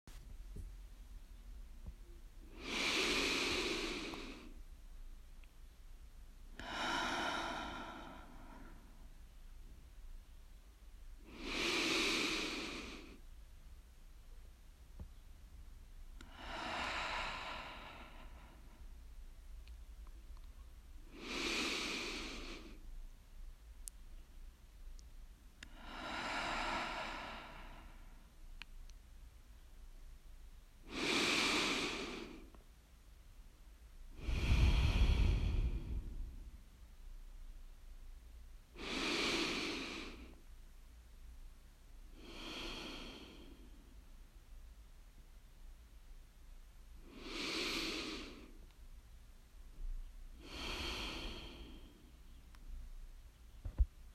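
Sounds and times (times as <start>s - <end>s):
human breathing: 2.4s - 4.6s, 6.5s - 9.1s, 11.2s - 13.2s, 16.2s - 18.9s, 21.0s - 22.9s, 25.6s - 28.4s, 30.8s - 32.6s, 34.1s - 36.7s, 38.7s - 40.5s, 42.1s - 44.0s, 47.0s - 48.7s, 50.3s - 52.5s.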